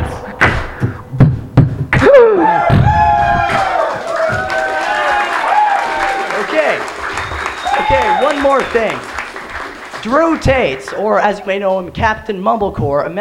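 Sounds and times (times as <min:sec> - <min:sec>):
claps and thumps: 0:01.2 - 0:11.0
lively crowd cheering and whooping applause: 0:02.0 - 0:11.6
speech: 0:08.5 - 0:09.1, 0:10.0 - 0:13.1.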